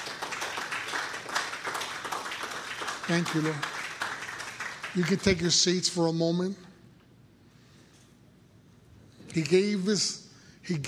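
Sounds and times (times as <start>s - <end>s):
audience clapping: 0.0s - 5.9s
speech: 3.1s - 3.7s, 5.0s - 6.7s, 9.4s - 10.8s.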